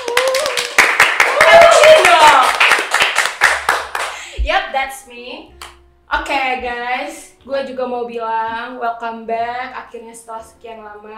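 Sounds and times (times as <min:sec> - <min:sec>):
rising whoop: 0:00.0 - 0:02.4
hand claps: 0:00.0 - 0:04.4
speech: 0:04.8 - 0:11.1.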